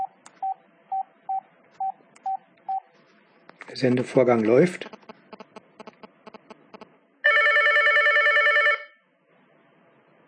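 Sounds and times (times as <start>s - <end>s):
speech: 3.7s - 5.0s
mobile phone quiet ticking pulses: 4.8s - 6.8s
mobile phone trilling ring for incoming message: 7.3s - 9.0s.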